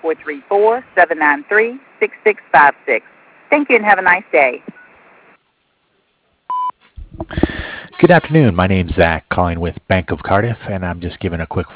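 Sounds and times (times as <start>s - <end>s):
speech: 0.0s - 4.8s, 7.2s - 11.7s
answering machine beep: 6.5s - 6.7s.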